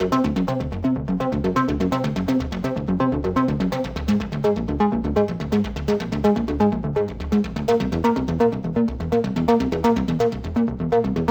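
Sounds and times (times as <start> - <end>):
minimal electronic music: 0.0 - 11.2.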